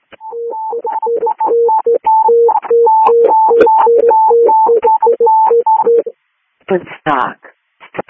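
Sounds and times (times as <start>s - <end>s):
radio dispatch alert tones sent while dispatching an ambulance: 0.2s - 6.1s
speech: 6.7s - 7.4s.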